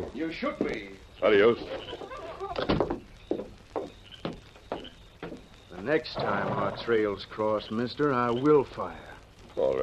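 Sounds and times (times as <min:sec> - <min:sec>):
speech: 0:00.0 - 0:02.8, 0:05.8 - 0:09.8
outside door clunking and creaking: 0:04.2 - 0:06.9.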